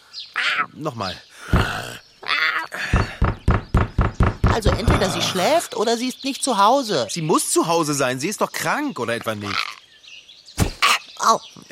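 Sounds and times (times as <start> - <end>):
speech: 0.6 - 2.0, 4.6 - 9.7, 11.3 - 11.7
knocking on a door: 1.6 - 1.8, 2.9 - 5.2
groaning sound: 4.5 - 5.6.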